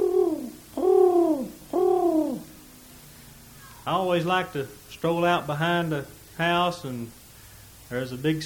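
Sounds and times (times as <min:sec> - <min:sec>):
pigeons cooing: 0:00.0 - 0:02.6
speech: 0:03.9 - 0:07.2, 0:07.9 - 0:08.4.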